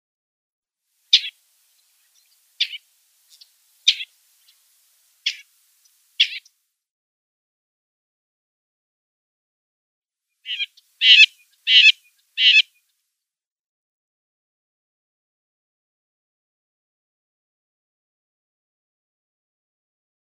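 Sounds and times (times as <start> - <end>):
Isabelline Shrike call: 1.1 - 6.5, 10.4 - 12.8.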